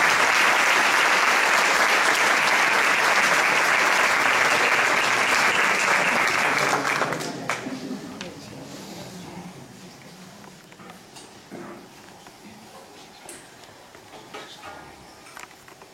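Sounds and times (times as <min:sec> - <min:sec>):
audience applause welcoming a singer: 0:00.0 - 0:07.8.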